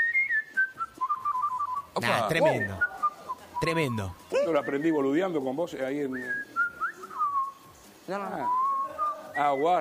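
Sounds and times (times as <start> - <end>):
person whistling to mimic birdsong: 0.0 - 5.0, 6.1 - 7.7, 8.3 - 9.7
speech: 2.0 - 2.9, 3.6 - 6.5, 8.1 - 8.6, 9.4 - 9.7.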